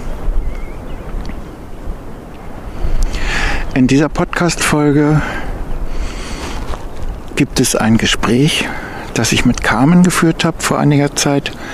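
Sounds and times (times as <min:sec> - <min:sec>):
fresh west wind blowing on a sunny May evening: 0:00.0 - 0:11.7
speech: 0:03.8 - 0:05.4, 0:07.4 - 0:11.7.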